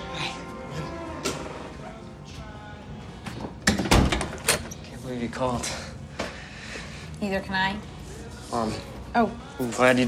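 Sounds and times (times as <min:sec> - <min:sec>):
apartment door opening: 0:03.6 - 0:04.7
speech: 0:05.3 - 0:05.9, 0:07.2 - 0:07.9, 0:08.5 - 0:10.0.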